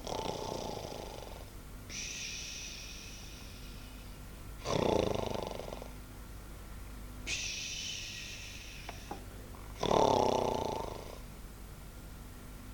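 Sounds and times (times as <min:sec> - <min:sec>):
three young men snoring while asleep: 0:00.0 - 0:01.5, 0:04.6 - 0:06.0, 0:09.8 - 0:11.2.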